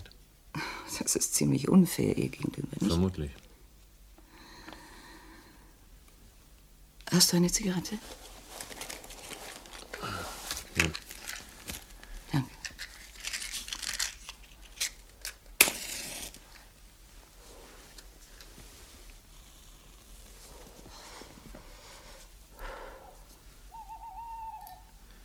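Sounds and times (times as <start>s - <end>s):
speech: 1.0s - 3.4s, 7.1s - 8.3s, 10.8s - 11.0s
rustling and crumpling: 8.0s - 22.4s
owl hooting: 22.9s - 25.2s.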